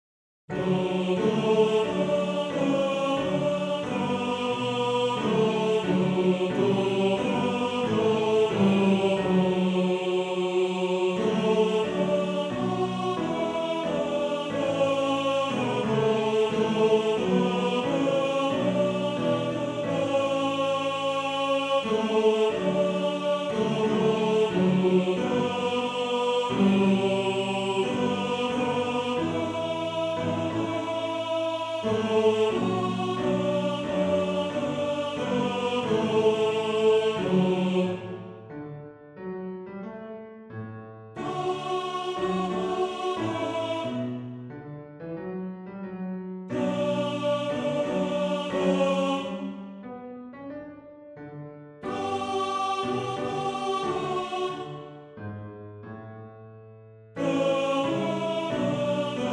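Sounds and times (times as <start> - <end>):
male choir singing a motet tenor part: 0.5 - 38.5, 41.2 - 44.3, 46.5 - 49.8, 51.8 - 55.2, 57.2 - 59.3.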